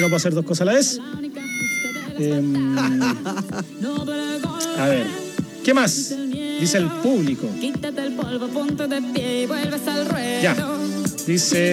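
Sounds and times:
cat meowing in a video: 0:00.0 - 0:00.2, 0:01.4 - 0:02.2
laughter: 0:00.0 - 0:00.2, 0:01.4 - 0:03.9
speech: 0:00.0 - 0:01.4, 0:02.2 - 0:11.7.

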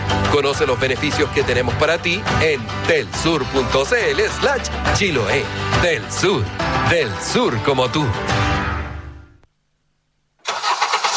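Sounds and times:
speech: 0:00.3 - 0:08.6
rough roaring engine starting and revving: 0:10.4 - 0:11.1.

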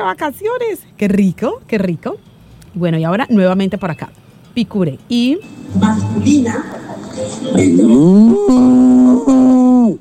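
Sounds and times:
speech: 0:00.0 - 0:09.9
bull bellowing: 0:07.6 - 0:09.9.

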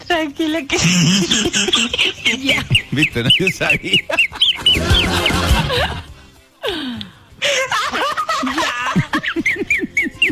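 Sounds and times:
speech: 0:00.2 - 0:06.0
laughter: 0:00.8 - 0:06.2, 0:07.4 - 0:10.3
chicken with bronchitis squawking hoarsely: 0:04.5 - 0:06.0.

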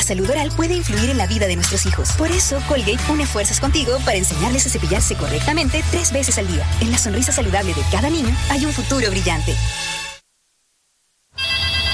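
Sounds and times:
speech: 0:00.1 - 0:10.0
intercom ringing with a harsh buzzy electronic tone: 0:11.4 - 0:11.9.

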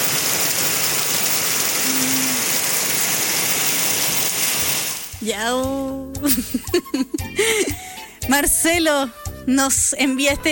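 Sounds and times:
heavy rain downpour in Crucero, Río Bueno: 0:00.0 - 0:05.1
speech: 0:05.2 - 0:10.4.

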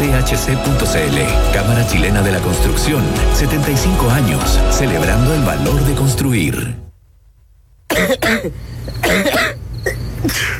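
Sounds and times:
speech: 0:00.2 - 0:06.8, 0:07.9 - 0:09.3, 0:10.2 - 0:10.5
person coughing harsh chesty bursts: 0:07.9 - 0:10.5
rough throat clearing: 0:07.9 - 0:10.5.

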